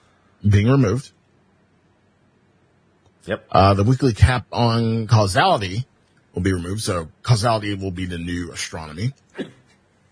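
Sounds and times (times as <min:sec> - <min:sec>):
speech: 0:00.4 - 0:01.2, 0:03.2 - 0:09.6
person's stifled sneeze turned away from the microphone: 0:09.4 - 0:09.7.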